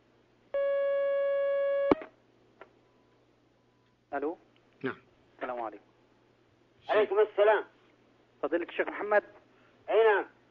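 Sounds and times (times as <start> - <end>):
telephone line tone as a caller connects: 0.6 - 2.0
speech: 4.1 - 5.9, 6.9 - 7.7, 8.4 - 9.3.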